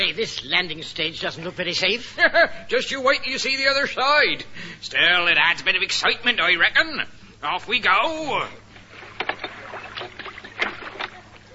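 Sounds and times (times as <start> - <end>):
low steady hum: 0.0 - 11.5
speech: 0.1 - 8.6
oars splashing in a river: 8.8 - 11.5
old wooden rowing boat creaking on a river: 8.8 - 11.5.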